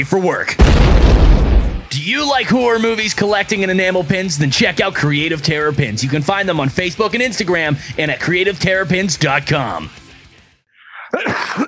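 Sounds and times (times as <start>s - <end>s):
speech: 0.0s - 10.0s
loud explosive cough: 10.9s - 11.6s.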